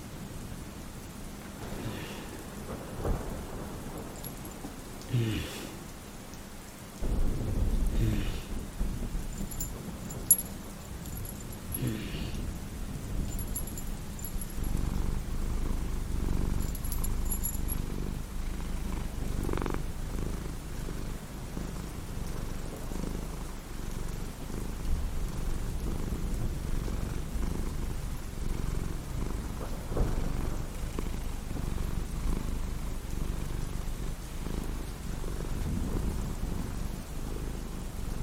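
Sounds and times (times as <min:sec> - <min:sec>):
cat purring: 0:01.6 - 0:05.7, 0:07.1 - 0:38.2
faint rustles: 0:04.0 - 0:04.7, 0:09.2 - 0:12.1, 0:13.1 - 0:18.2
faint light jingles: 0:04.0 - 0:04.9, 0:09.2 - 0:18.2.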